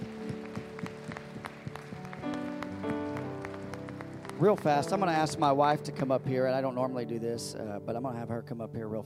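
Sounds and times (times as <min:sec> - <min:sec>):
audience clapping hands in a steady rhythmic beat: 0:00.0 - 0:06.1
sustained organ or keyboard chords: 0:00.0 - 0:09.0
speech: 0:04.4 - 0:09.0.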